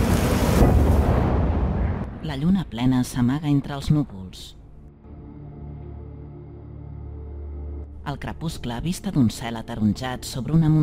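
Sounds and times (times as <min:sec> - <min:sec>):
car explosion erupting into a deep roaring fireball: 0:00.0 - 0:02.2
speech: 0:02.3 - 0:04.6, 0:08.0 - 0:10.8.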